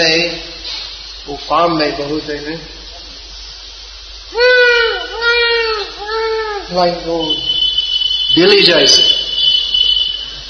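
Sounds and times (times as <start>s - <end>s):
speech: 1.3s - 2.8s, 4.3s - 4.6s, 6.0s - 7.5s, 8.3s - 9.2s
peacock calling: 4.3s - 10.4s.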